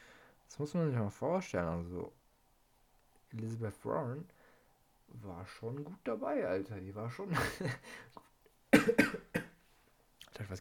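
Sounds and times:
speech: 0.6 - 2.2, 3.3 - 4.4, 5.1 - 9.2, 10.4 - 10.5
person coughing harshly: 8.8 - 9.6.

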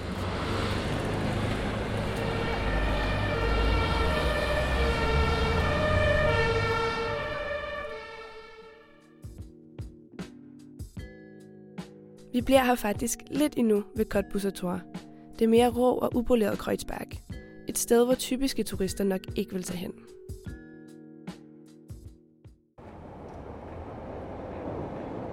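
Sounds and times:
street traffic rumbling: 0.0 - 8.9, 22.8 - 25.3
siren wailing on a passing vehicle: 1.6 - 9.0
speech: 12.4 - 20.6.

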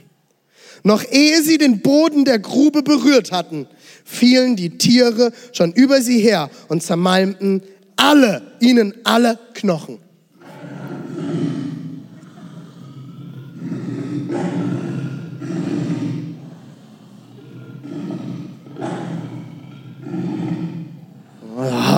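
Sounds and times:
speech: 0.8 - 10.0
lion roaring: 10.4 - 21.9.

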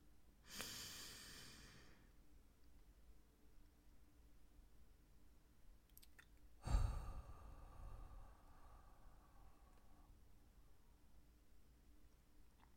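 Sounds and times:
soft hiss: 0.0 - 12.7
slow deep breath in and out: 0.5 - 2.1, 6.6 - 11.1.

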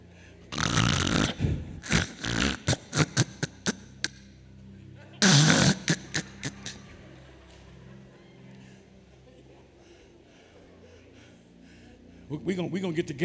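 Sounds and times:
preacher imitating loud snoring: 0.5 - 4.2, 5.2 - 6.8
laughter: 4.7 - 11.6
speech: 12.4 - 13.2.

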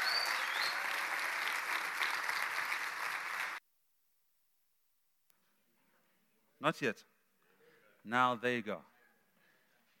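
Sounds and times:
audience applause: 0.0 - 3.6
speech: 6.6 - 7.2, 8.0 - 8.9.

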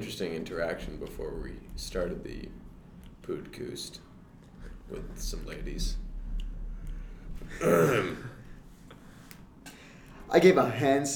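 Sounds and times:
speech: 0.0 - 4.1, 4.9 - 6.0, 7.4 - 8.4, 10.3 - 11.1
quiet hum: 0.0 - 11.1
throat clearing: 7.5 - 8.4.

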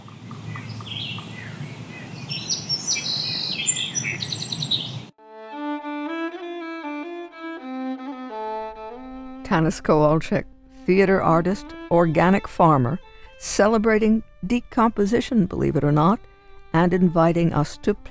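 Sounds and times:
birds chirping and singing outdoors: 0.4 - 5.1
clean melodic tonal passage: 5.2 - 18.0
low rumbling outdoor backdrop: 8.5 - 18.0
speech: 9.5 - 18.0.

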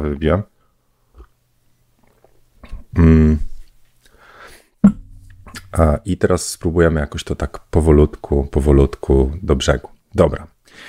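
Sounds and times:
speech: 0.0 - 0.5, 2.9 - 3.5, 5.8 - 10.8
person sipping tea: 2.0 - 2.8.

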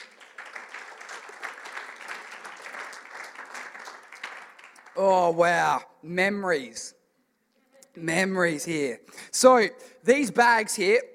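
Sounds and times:
crowd applauding: 0.0 - 5.4
speech: 5.0 - 7.0, 8.0 - 11.1.

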